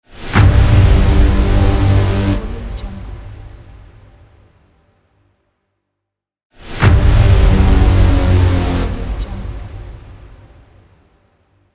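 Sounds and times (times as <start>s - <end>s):
braam hit for transitions: 0.3s - 3.6s, 6.7s - 10.7s.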